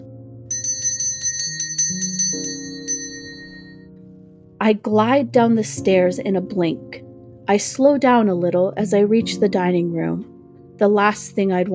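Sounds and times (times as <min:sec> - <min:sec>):
soft low musical backdrop: 0:00.0 - 0:11.7
dinner bell ringing: 0:00.5 - 0:03.8
speech: 0:04.6 - 0:11.7.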